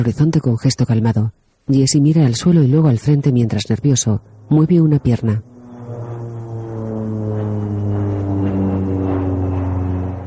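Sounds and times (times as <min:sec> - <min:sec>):
speech: 0:00.0 - 0:05.5
small propeller plane flying over the desert near Albuquerque: 0:02.3 - 0:10.2.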